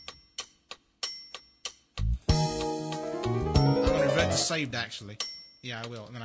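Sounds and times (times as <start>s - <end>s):
metronome ticking: 0.0s - 6.2s
sustained bright musical tone: 2.3s - 5.2s
speech: 4.3s - 6.2s.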